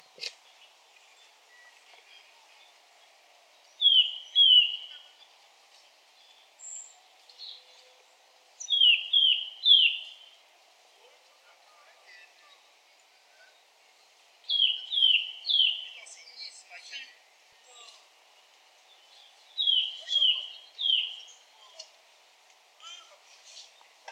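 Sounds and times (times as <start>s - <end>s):
nuthatch Sitta europaea: 3.8s - 5.2s, 8.6s - 10.4s, 14.4s - 16.7s, 19.0s - 21.8s.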